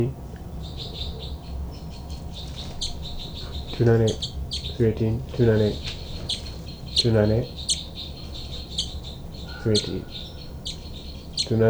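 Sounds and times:
speech: 0:00.0 - 0:00.2, 0:03.8 - 0:05.9, 0:07.0 - 0:07.6, 0:09.6 - 0:10.2, 0:11.5 - 0:11.6
low hiss: 0:00.0 - 0:11.6
two birds fighting with harsh threat calls: 0:00.0 - 0:11.6.

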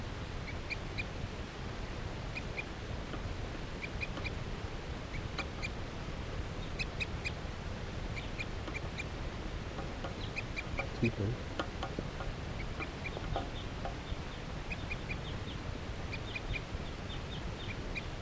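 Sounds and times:
steady low outdoor rumble: 0:00.0 - 0:18.1
wild bird calling in short high chirps: 0:03.8 - 0:04.4, 0:06.6 - 0:07.4, 0:08.1 - 0:09.2, 0:09.8 - 0:11.4, 0:12.2 - 0:18.1
speech: 0:11.0 - 0:11.5.

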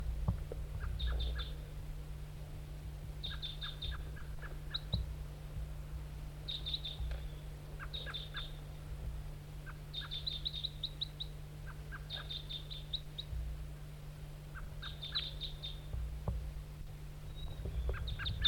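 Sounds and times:
steady low hum: 0:00.0 - 0:18.4
wild bird giving rapid high chirping calls near a decoy: 0:00.8 - 0:01.6, 0:03.2 - 0:05.0, 0:06.5 - 0:08.6, 0:09.6 - 0:13.4, 0:14.5 - 0:15.9, 0:17.3 - 0:18.4.

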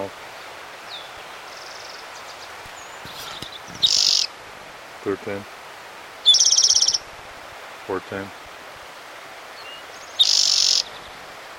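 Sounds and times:
single bird chirping: 0:00.9 - 0:04.3, 0:06.2 - 0:07.0, 0:09.6 - 0:11.2
single bird's loud bright rapid trill: 0:03.1 - 0:04.3, 0:06.2 - 0:07.0, 0:10.1 - 0:11.0
speech: 0:05.0 - 0:05.6, 0:07.9 - 0:08.4.

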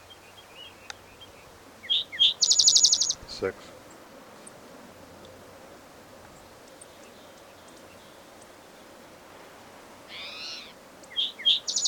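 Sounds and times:
female crow calling in short raspy bursts: 0:01.8 - 0:03.2, 0:10.1 - 0:11.8
speech: 0:03.4 - 0:03.8.

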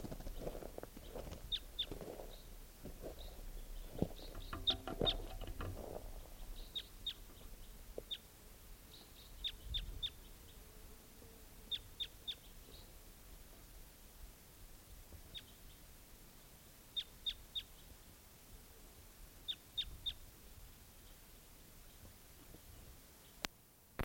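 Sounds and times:
hiss: 0:00.0 - 0:24.0
bird chirps: 0:00.4 - 0:02.5, 0:03.2 - 0:05.5, 0:06.2 - 0:08.2, 0:08.9 - 0:10.6, 0:11.7 - 0:12.9, 0:15.3 - 0:15.8, 0:17.0 - 0:17.9.

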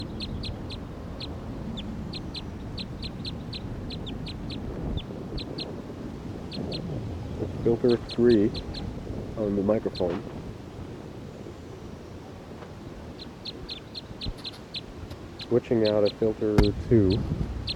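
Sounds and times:
wild bird perched on a hose chirping: 0:00.0 - 0:05.8, 0:06.4 - 0:09.0, 0:09.8 - 0:10.2, 0:13.1 - 0:17.7
low steady hum: 0:00.0 - 0:17.7
speech: 0:07.7 - 0:08.8, 0:09.4 - 0:10.4, 0:15.5 - 0:17.4.

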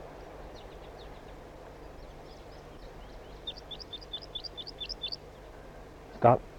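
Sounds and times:
steady low hum: 0:00.0 - 0:06.5
crossbill flight calls with sharp high chip notes: 0:00.5 - 0:05.5.

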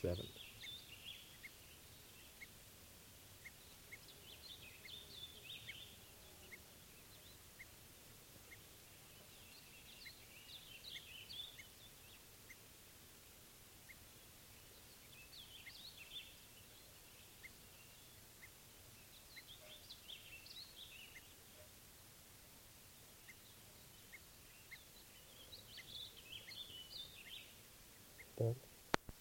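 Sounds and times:
speech: 0:00.0 - 0:00.4, 0:28.4 - 0:28.7
faint bird calls chirping: 0:00.0 - 0:29.1.

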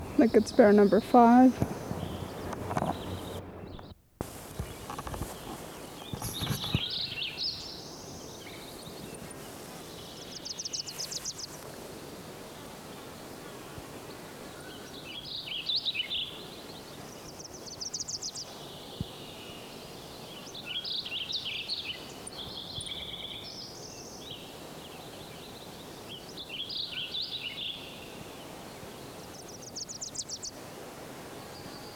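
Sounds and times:
other bird calls: 0:00.0 - 0:07.9
Wilson's Warbler song: 0:00.0 - 0:31.9
steady outdoor hiss: 0:00.0 - 0:31.9
speech: 0:00.2 - 0:01.8.

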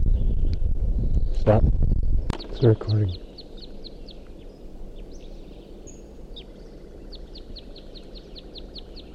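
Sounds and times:
steady low rumbling background noise: 0:00.0 - 0:09.1
speech: 0:01.4 - 0:01.9, 0:02.6 - 0:03.2
Type 2 Red Crossbill flight calls: 0:02.3 - 0:09.1.

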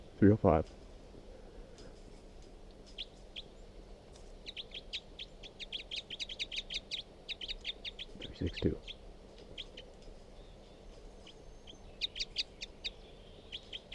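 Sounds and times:
low steady hum: 0:00.0 - 0:13.9
speech: 0:00.2 - 0:00.8, 0:08.4 - 0:08.9
bird chirping: 0:02.8 - 0:13.9.

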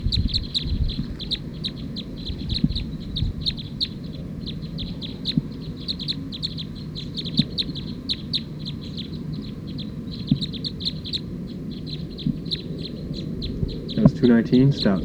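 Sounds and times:
bird calling in bursts of high chirps: 0:00.0 - 0:15.0
constant low rumble of noise: 0:00.0 - 0:15.0
speech: 0:14.2 - 0:15.0.

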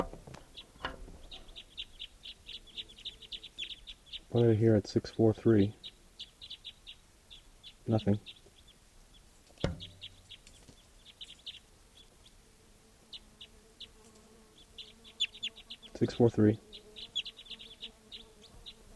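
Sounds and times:
bird calling with high-pitched chirps: 0:00.0 - 0:18.9
speech: 0:04.3 - 0:05.9, 0:07.9 - 0:08.4, 0:16.0 - 0:16.7
thump: 0:09.6 - 0:09.9.

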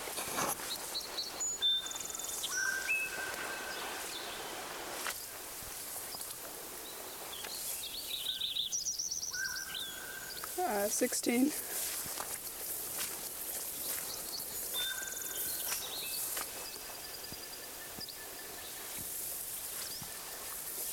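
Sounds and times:
soft hissing background: 0:00.0 - 0:20.9
Lincoln's sparrow singing: 0:00.6 - 0:04.6, 0:06.8 - 0:11.8, 0:13.0 - 0:19.1
speech: 0:10.8 - 0:11.8.

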